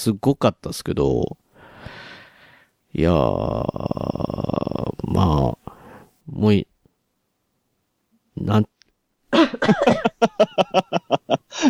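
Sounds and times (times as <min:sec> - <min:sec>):
speech: 0:00.0 - 0:02.0, 0:02.9 - 0:05.6, 0:06.3 - 0:06.7, 0:08.4 - 0:08.7, 0:09.3 - 0:11.6
person in a harsh coughing fit: 0:09.3 - 0:10.1
laughter: 0:09.4 - 0:11.6.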